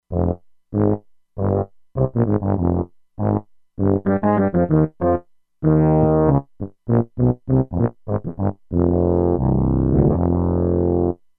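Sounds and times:
E-mu Proteus-2 synthesized tuba factory preset: 0.0 - 11.2.

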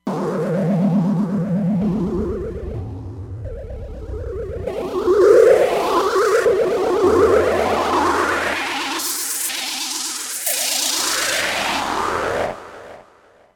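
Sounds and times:
Roland Fantom XR synthesizer sound: 0.0 - 12.2.

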